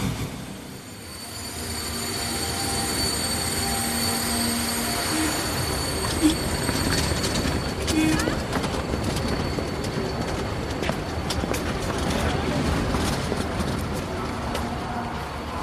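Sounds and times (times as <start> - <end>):
high metallic whine from the train wheels: 0.0 - 11.0
train rolling through a railway station in Marseille, France: 0.0 - 15.6.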